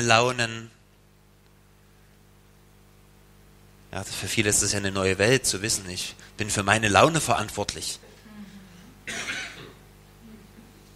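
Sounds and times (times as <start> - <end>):
speech: 0.0 - 0.8, 3.9 - 8.0
audience member coughing: 8.4 - 9.8.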